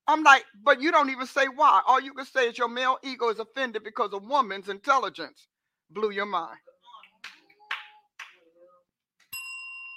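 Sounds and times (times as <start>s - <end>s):
speech: 0.1s - 7.4s
bright bell ding: 9.3s - 9.9s.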